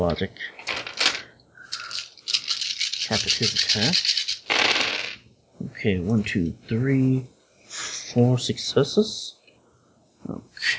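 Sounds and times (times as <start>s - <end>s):
speech: 0.0s - 0.8s, 3.1s - 4.2s, 5.6s - 9.4s, 10.2s - 10.7s
six dice rolling across a hard surface during a tabletop role-playing game: 0.6s - 5.2s.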